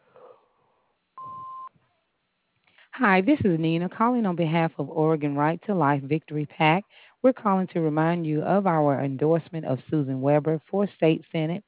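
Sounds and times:
home answering machine electronic beep after greeting: 1.2s - 1.7s
speech: 3.0s - 11.6s.

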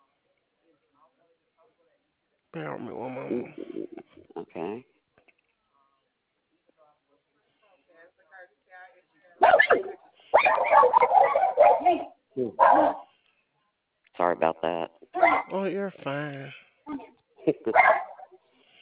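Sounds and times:
speech: 2.5s - 5.0s, 11.8s - 13.0s, 14.2s - 18.1s
small dogs barking with yelps and yips: 9.4s - 13.1s, 15.2s - 15.6s, 17.7s - 18.4s.

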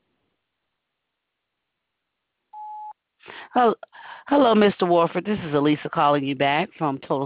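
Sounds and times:
steady electronic answering machine beep: 2.6s - 2.9s
speech: 3.5s - 7.2s.

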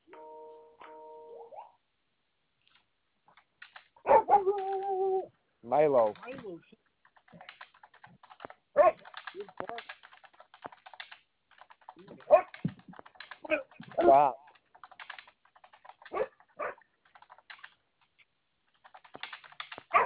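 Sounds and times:
keyboard typing: 2.7s - 5.0s, 6.0s - 20.0s
dog barking: 4.0s - 4.6s, 8.8s - 9.1s, 12.2s - 12.6s, 16.1s - 16.9s
dog whining: 4.1s - 5.3s
speech: 5.7s - 7.5s, 14.1s - 14.4s.

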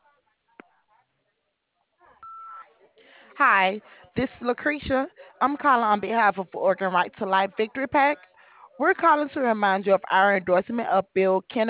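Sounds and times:
answering machine beep: 2.2s - 2.6s
speech: 3.4s - 11.6s.

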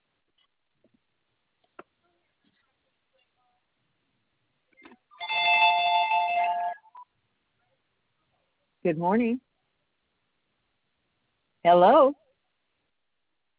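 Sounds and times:
landline telephone ringing with an electronic trill: 5.2s - 7.0s
speech: 8.9s - 9.4s, 11.6s - 12.2s.

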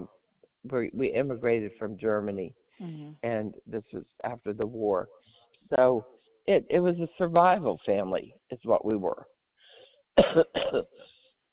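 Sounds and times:
speech: 0.7s - 9.3s, 10.2s - 11.1s
person coughing: 10.2s - 11.1s.

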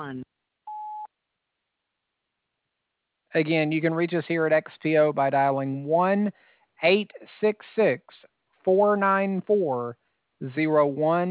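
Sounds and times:
speech: 0.0s - 0.4s, 3.3s - 11.2s
answering machine recording tone beep: 0.7s - 1.1s.

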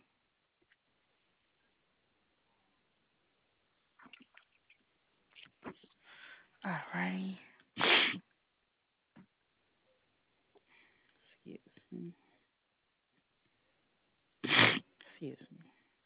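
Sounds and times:
speech: 6.6s - 7.5s
person sneezing: 7.8s - 8.2s, 14.4s - 14.9s
person sniffing: 7.8s - 8.2s, 14.4s - 14.9s.

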